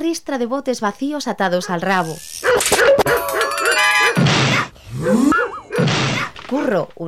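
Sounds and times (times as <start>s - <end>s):
speech: 0.0s - 3.4s, 5.0s - 5.4s, 6.5s - 7.0s
dog barking and yelping excitedly: 1.6s - 6.4s.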